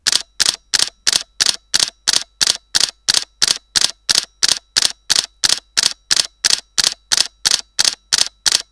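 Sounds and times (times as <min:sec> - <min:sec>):
Canon EOS-50D camera continuous shooting in L RAW: 0:00.0 - 0:08.6.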